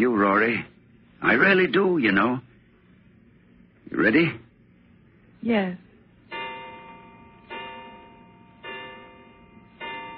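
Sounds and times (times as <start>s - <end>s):
speech: 0.0s - 2.5s, 3.9s - 4.4s, 5.4s - 5.8s
clock striking the hour with ringing chimes: 6.3s - 10.1s.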